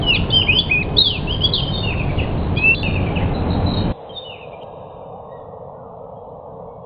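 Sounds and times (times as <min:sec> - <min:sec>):
fully trained pied bush chat singing a varied chatter: 0:00.0 - 0:04.8.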